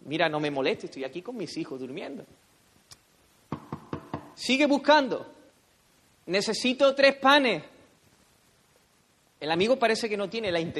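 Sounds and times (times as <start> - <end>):
speech: 0.1 - 2.5, 4.4 - 5.4, 6.3 - 7.7, 9.4 - 10.7
firm knocking on a wooden door: 3.5 - 4.4.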